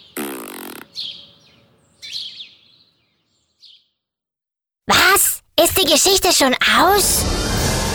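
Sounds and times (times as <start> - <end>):
cartoon fart sound effect: 0.2 - 0.9
speech: 5.6 - 7.8.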